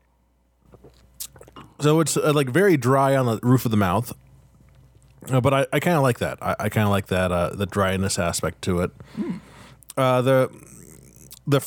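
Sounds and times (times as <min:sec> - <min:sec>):
gulping swallows of beer: 0:00.7 - 0:01.8, 0:10.4 - 0:11.5
person sipping beer: 0:00.7 - 0:01.8, 0:09.0 - 0:11.5
speech: 0:01.8 - 0:04.2, 0:05.2 - 0:10.8, 0:11.5 - 0:11.6.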